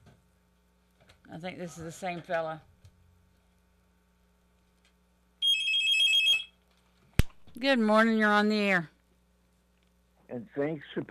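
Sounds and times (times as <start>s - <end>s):
speech: 1.3s - 2.7s, 7.6s - 8.9s, 10.3s - 11.0s
telephone ringing with a bright trilling bell tone: 5.4s - 6.6s.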